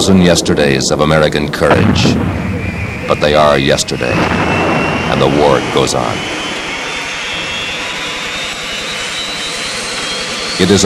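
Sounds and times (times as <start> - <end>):
speech: 0.0 - 2.5, 3.1 - 6.4, 10.6 - 10.8
helicopter turbine whine: 0.0 - 10.8.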